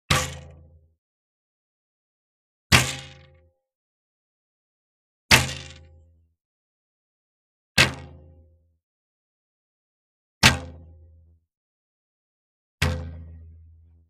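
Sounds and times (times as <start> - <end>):
arrow from a bow hitting a target: 0.1 - 0.6, 2.7 - 3.3, 5.3 - 5.9, 7.8 - 8.2, 10.4 - 10.8, 12.8 - 13.2.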